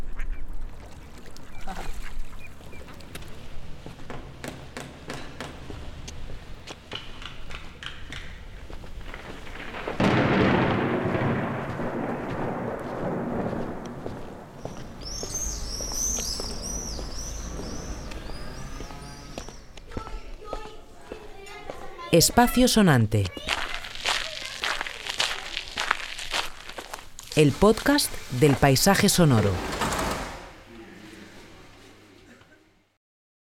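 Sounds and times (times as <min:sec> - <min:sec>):
fireworks popping and crackling over a city at night: 0:07.7 - 0:15.0, 0:23.4 - 0:30.0
heavy rumbling fireworks boom: 0:09.0 - 0:17.8
speech: 0:22.1 - 0:23.5, 0:27.4 - 0:29.8.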